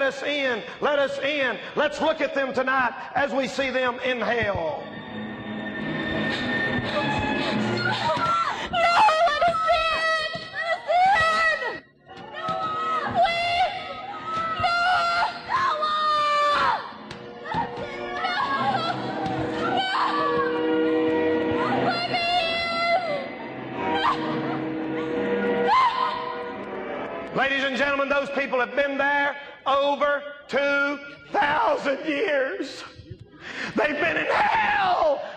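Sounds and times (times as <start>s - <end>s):
speech: 0.0s - 5.0s, 28.1s - 32.9s, 33.7s - 35.3s
crowd of people screaming and wailing: 5.7s - 26.8s.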